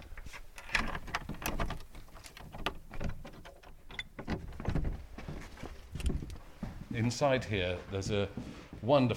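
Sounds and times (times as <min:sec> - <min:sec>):
door pushed open with knocks, rattles and creaky clunks: 0:00.6 - 0:06.4
shuffling footsteps of people moving through a door: 0:01.3 - 0:09.1
speech: 0:07.0 - 0:09.1.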